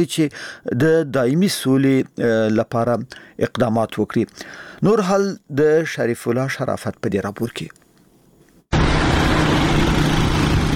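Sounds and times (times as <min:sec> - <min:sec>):
speech: 0:00.0 - 0:07.8
motorcycles and cars of armed Taliban fighters in Afghanistan roaring: 0:08.8 - 0:10.7.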